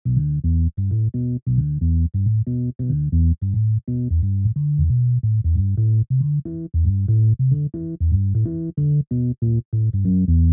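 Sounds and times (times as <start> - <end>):
electric piano bass: 0.0 - 10.5.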